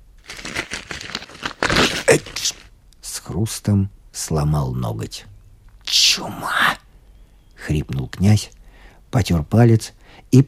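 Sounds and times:
paper page torn by hand: 0.2 - 2.7
speech: 2.1 - 2.6, 3.4 - 5.3, 6.2 - 6.6, 7.7 - 10.4.

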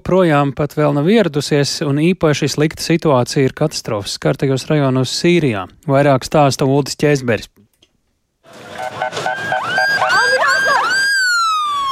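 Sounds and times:
speech: 0.0 - 7.6
ambulance siren wailing in a city: 8.5 - 11.9.

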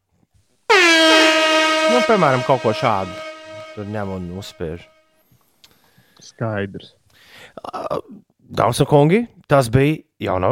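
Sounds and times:
loud blaring air horn blast from a sampler: 0.7 - 5.0
speech: 1.9 - 4.9, 6.2 - 10.5.

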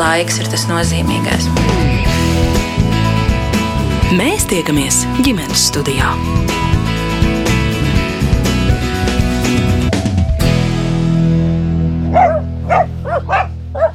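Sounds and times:
music: 0.0 - 13.9
speech: 0.1 - 2.8, 4.1 - 6.8
dogs barking excitedly in greeting: 12.0 - 13.9.

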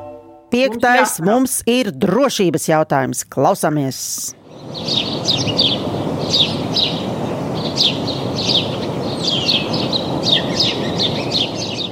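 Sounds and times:
speech: 0.5 - 5.7
outdoor noise: 0.5 - 11.8
birds chirping: 0.6 - 1.4, 4.4 - 11.8.

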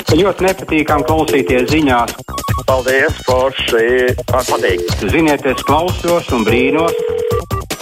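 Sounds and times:
speech: 0.1 - 7.1
telephone ringing with warbling electronic tones: 0.9 - 3.0, 4.3 - 7.6.

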